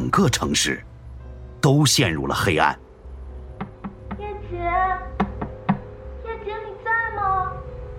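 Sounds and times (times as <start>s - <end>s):
sustained tonal musical background: 0.0s - 7.9s
speech: 0.1s - 0.9s, 1.6s - 2.8s
knocking on a door: 3.5s - 4.3s, 5.1s - 6.0s.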